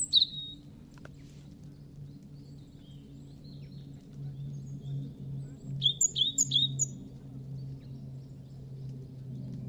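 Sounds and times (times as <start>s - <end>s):
European robin giving thin high twittering notes: 0.0s - 0.6s, 5.8s - 7.0s
steady low hum: 0.0s - 9.6s.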